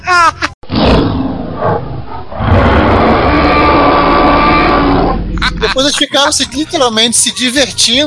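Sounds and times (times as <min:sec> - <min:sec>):
laughter: 0:00.0 - 0:00.6, 0:05.4 - 0:06.7
distorted digitized human roar as dinosaur effect: 0:00.7 - 0:05.8
speech: 0:05.9 - 0:08.0.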